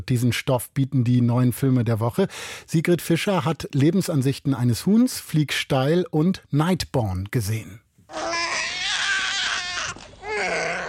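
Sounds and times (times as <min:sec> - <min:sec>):
speech: 0:00.0 - 0:08.3
newborn baby boy crying: 0:08.1 - 0:10.8.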